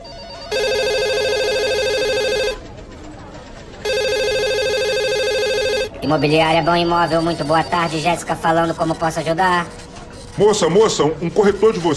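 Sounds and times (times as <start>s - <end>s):
shop telephone ringing in long electronic bursts: 0.0s - 2.7s, 3.8s - 8.2s
speech: 6.1s - 9.8s, 10.4s - 11.9s.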